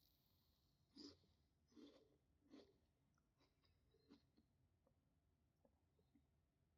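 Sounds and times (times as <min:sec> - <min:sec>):
chewing and crunching of food during a meal: 0:00.8 - 0:05.0.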